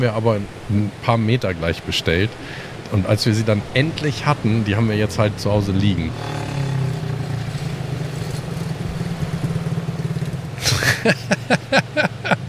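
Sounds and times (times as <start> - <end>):
speech: 0.0 - 6.6, 10.7 - 12.2
motorcycle engine idling after arriving: 6.0 - 11.3
laughter: 10.6 - 12.4.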